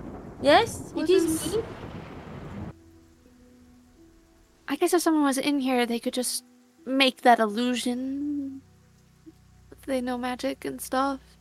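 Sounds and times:
thunder rumbling: 0.0s - 2.8s
speech: 0.4s - 1.8s, 4.7s - 8.4s, 9.9s - 11.4s.

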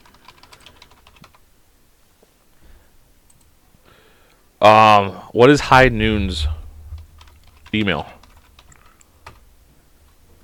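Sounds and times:
typing and clicking on a computer keyboard: 0.0s - 1.4s, 7.2s - 9.4s
faint steady hum: 0.0s - 10.4s
speech: 4.6s - 6.6s, 7.7s - 8.2s.

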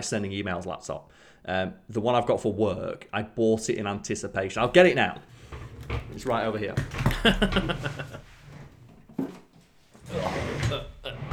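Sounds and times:
speech: 0.0s - 8.1s
office chair rolling across laminate flooring: 4.6s - 11.3s
laughter: 7.0s - 8.7s, 10.1s - 11.3s.

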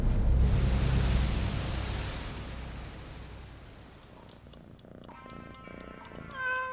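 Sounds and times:
broad hiss of noise: 0.1s - 6.7s
cat meowing: 4.6s - 6.7s.

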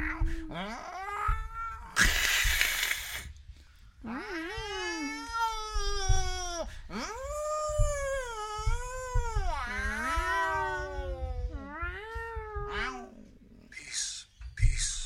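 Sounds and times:
people imitating cats with wavering meows and yowling wails: 0.0s - 3.2s, 4.0s - 13.3s
short breathy hisses or spits: 2.0s - 3.4s.

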